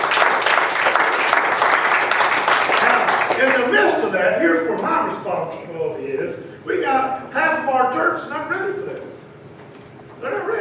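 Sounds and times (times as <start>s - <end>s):
church congregation applauding: 0.0s - 4.2s
speech: 3.5s - 9.2s, 10.2s - 10.5s.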